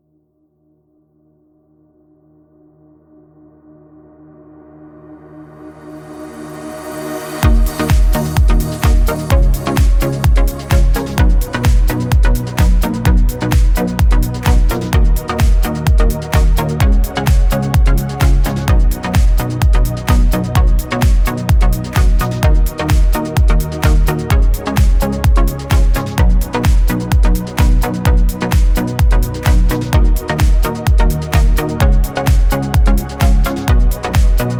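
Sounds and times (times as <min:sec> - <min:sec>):
Sylenth synthesizer test sounds: 0:07.2 - 0:34.5.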